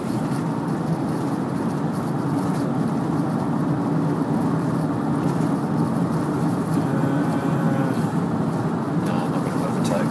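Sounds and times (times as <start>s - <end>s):
road noise of tyres and engine inside a car on a highway: 0.0s - 10.1s.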